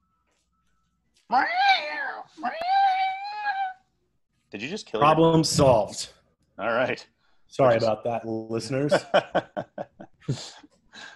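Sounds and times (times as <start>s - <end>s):
speech: 1.3s - 2.7s, 4.5s - 11.1s
cat meowing: 1.3s - 3.8s
laughter: 8.8s - 10.6s.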